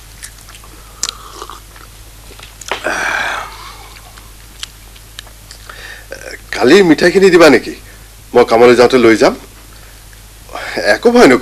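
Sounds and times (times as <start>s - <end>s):
chewing pomegranate seeds: 0.0s - 2.9s, 3.6s - 5.7s
low steady hum: 0.0s - 11.4s
speech: 6.6s - 9.4s, 11.0s - 11.4s.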